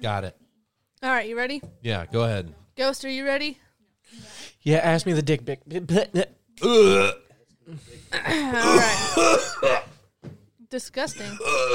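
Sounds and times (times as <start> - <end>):
speech: 0.0 - 0.4, 1.0 - 11.7
drawn-out croaking belch: 6.6 - 7.2, 8.1 - 9.9, 11.2 - 11.7
loud burp: 6.6 - 7.3, 8.1 - 10.0, 11.2 - 11.7.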